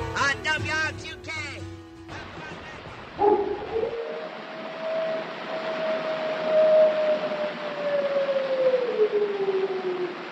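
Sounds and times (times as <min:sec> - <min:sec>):
voice: 0:00.2 - 0:03.0
wolf howling: 0:03.2 - 0:10.2.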